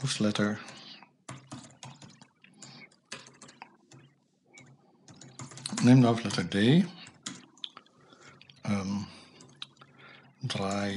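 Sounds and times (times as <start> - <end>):
speech: 0.0 - 0.8, 5.8 - 7.0, 10.5 - 10.9
typing on a computer keyboard: 0.4 - 7.7, 10.6 - 10.9.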